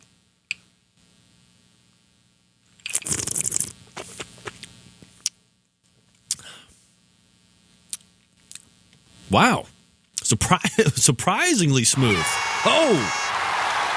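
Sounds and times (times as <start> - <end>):
sip of moonshine on the rocks: 2.9 - 3.8
speech: 9.3 - 9.7, 10.3 - 13.4.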